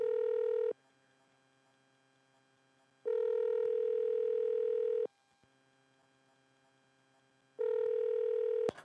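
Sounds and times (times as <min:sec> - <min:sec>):
outgoing phone call electronic ringback tone: 0:00.0 - 0:00.7, 0:03.1 - 0:05.1, 0:07.6 - 0:08.7.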